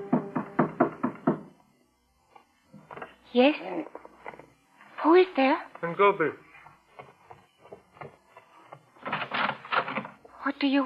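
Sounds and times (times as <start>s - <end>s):
firm knocking on a door: 0.0s - 1.6s
speech: 3.3s - 4.0s, 5.0s - 6.4s, 10.6s - 10.8s.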